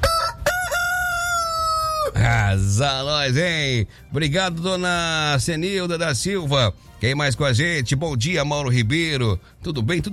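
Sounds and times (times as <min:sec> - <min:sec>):
rooster crowing on a farm: 0:00.0 - 0:02.2
speech: 0:02.1 - 0:10.1.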